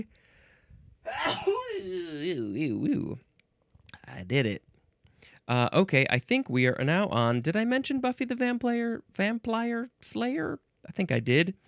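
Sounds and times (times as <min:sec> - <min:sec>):
person sneezing: 0:01.1 - 0:03.0
speech: 0:01.1 - 0:03.3, 0:04.1 - 0:04.7, 0:05.5 - 0:11.6.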